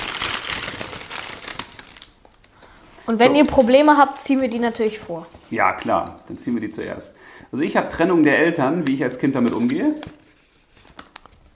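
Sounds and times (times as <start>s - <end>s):
bag crinkling as hands rummage inside: 0.0s - 5.0s
speech: 3.1s - 10.2s.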